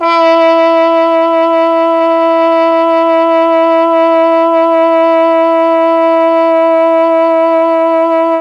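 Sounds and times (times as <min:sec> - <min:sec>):
E3 trombone note on a mellotron: 0:00.0 - 0:08.4.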